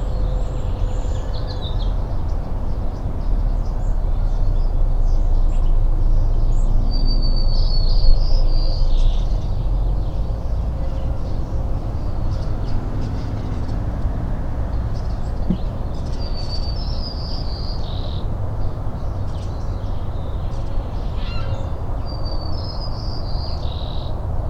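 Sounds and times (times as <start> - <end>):
morning birdsong in Richland, Washington: 0.0 - 24.4.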